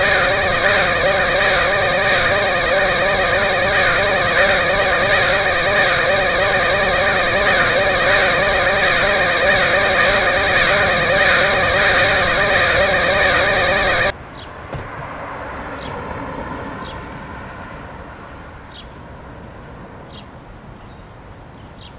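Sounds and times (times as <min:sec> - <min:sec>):
crows cawing in Portland Oregon: 0:00.0 - 0:14.0
quiet outdoor ambience: 0:00.0 - 0:21.9.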